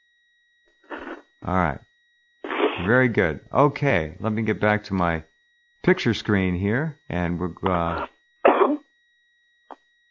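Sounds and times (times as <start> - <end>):
speech: 1.5 - 1.9, 2.8 - 8.1
single short rough cough: 8.5 - 8.8.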